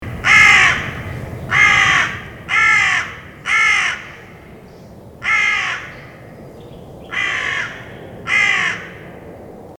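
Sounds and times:
carrion crow cawing: 0.0s - 4.5s, 5.2s - 6.3s, 7.0s - 9.1s
low background rumble: 0.0s - 9.7s.

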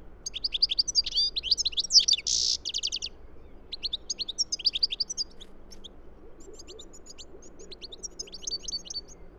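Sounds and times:
European goldfinch (Carduelis carduelis) twittering song: 0.2s - 3.1s, 3.7s - 5.9s, 6.6s - 9.2s.

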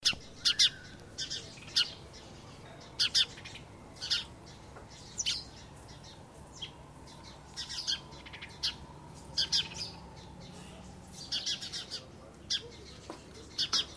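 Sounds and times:
house sparrow Passer domesticus chirps: 0.0s - 13.9s.

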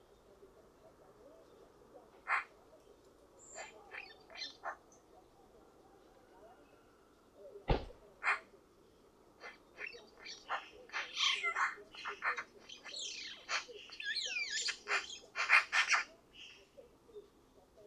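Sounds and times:
Eurasian magpie Pica pica harsh rattling chatter: 3.5s - 4.8s, 9.4s - 16.6s.

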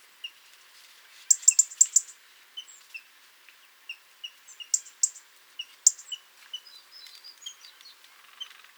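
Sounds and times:
European robin giving soft ticks and sharp high bursts: 1.3s - 3.1s, 3.9s - 8.7s.

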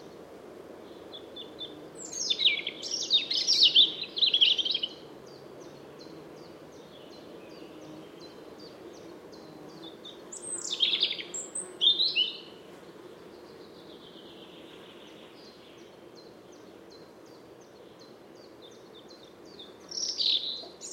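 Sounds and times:
European robin Erithacus rubecula singing a rich, high, scratchy warble: 0.8s - 20.9s.

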